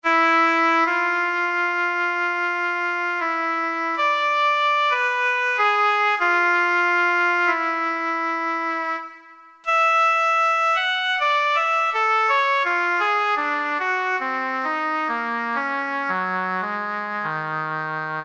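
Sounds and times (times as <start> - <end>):
oboe on a digital piano: 0.0 - 18.2.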